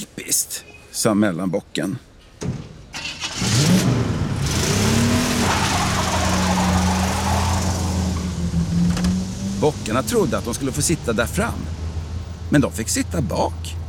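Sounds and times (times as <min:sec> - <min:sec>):
speech: 0:00.3 - 0:02.1, 0:09.6 - 0:11.8, 0:12.5 - 0:13.8
car engine cranking, catching and revving as the car drives off: 0:03.0 - 0:12.5.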